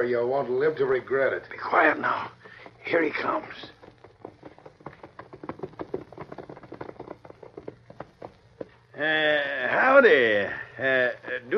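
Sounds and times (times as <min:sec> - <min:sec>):
speech: 0:00.0 - 0:03.8, 0:09.0 - 0:11.5
horse hooves clip-clopping on packed ground: 0:00.8 - 0:09.0.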